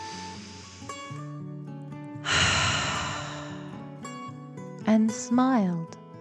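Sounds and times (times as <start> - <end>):
slow deep breath in and out during a guided relaxation for children: 0.0 - 1.2, 2.2 - 4.1
speech: 5.0 - 6.0.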